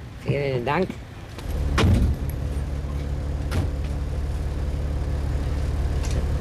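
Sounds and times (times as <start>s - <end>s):
low engine rumble of a milk-carrying car stopped on the road: 0.0s - 6.3s
speech: 0.2s - 1.1s
heavy door-like thump: 1.6s - 2.5s, 3.5s - 4.0s.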